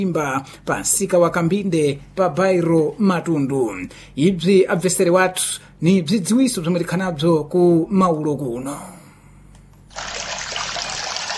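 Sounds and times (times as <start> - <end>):
speech: 0.0 - 9.0
mineral water trickling from a mountain spring fountain: 9.9 - 11.3.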